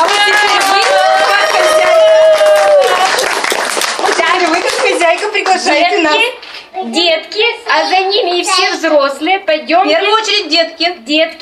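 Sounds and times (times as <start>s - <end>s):
crowd applauding at a library ceremony: 0.0s - 5.7s
speech: 6.9s - 11.4s.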